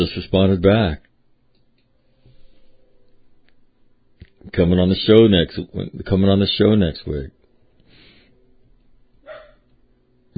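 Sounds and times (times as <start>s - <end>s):
speech: 0.0s - 1.1s, 4.4s - 7.4s
dog barking: 9.2s - 9.7s.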